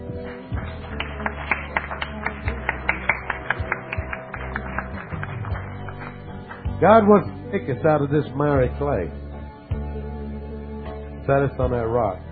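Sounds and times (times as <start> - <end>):
group clapping along in a steady rhythm: 0.0 - 7.2
speech: 6.8 - 9.2, 11.3 - 12.3.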